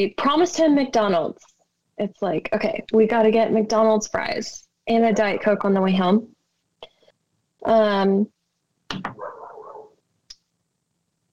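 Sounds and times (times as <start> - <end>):
speech: 0.0 - 6.3, 7.6 - 9.3
dog barking: 9.1 - 10.0.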